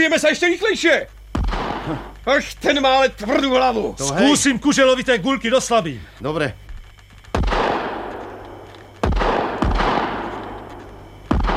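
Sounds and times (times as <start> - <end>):
speech: 0.0 - 1.2, 1.8 - 6.6
loud gunshots with long rumbling echo: 1.4 - 1.9, 7.4 - 8.4, 9.0 - 10.6, 11.3 - 11.5.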